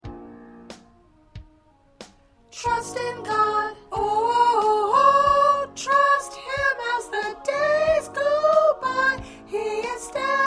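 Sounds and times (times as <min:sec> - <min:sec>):
soprano singing gospel songs: 0:02.5 - 0:10.4.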